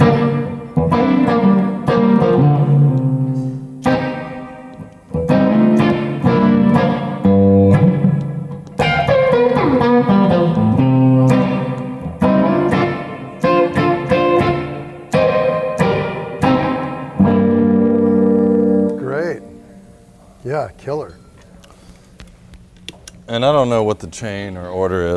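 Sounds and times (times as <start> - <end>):
electric guitar played through a spring reverb pedal: 0.0 - 20.1
speech: 23.4 - 25.1.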